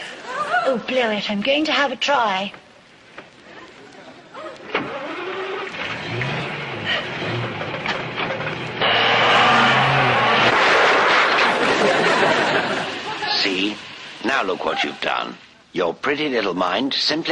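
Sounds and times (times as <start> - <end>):
speech: 0.7 - 2.6, 14.3 - 17.3
motor car engine running and driving: 4.8 - 12.0
laughter: 11.4 - 13.6.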